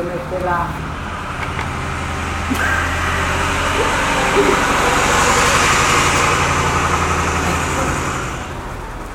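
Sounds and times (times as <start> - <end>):
tractor engine running: 0.2 - 9.1
speech: 0.3 - 1.0, 2.5 - 2.9, 3.8 - 5.2.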